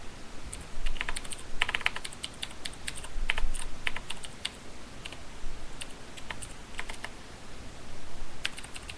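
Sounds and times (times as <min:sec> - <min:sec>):
two-finger typing on a DOS computer keyboard: 0:00.8 - 0:05.2, 0:05.8 - 0:07.1, 0:08.4 - 0:08.9.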